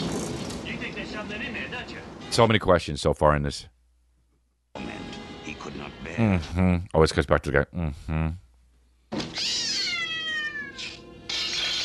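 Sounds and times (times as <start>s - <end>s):
speech: 1.2s - 3.7s, 6.2s - 8.4s
cat yowling and caterwauling: 9.3s - 11.8s.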